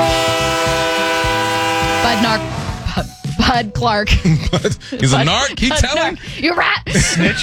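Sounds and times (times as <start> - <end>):
loud sustained train horn: 0.0 - 2.8
speech: 2.1 - 7.4
laughter: 4.1 - 7.4.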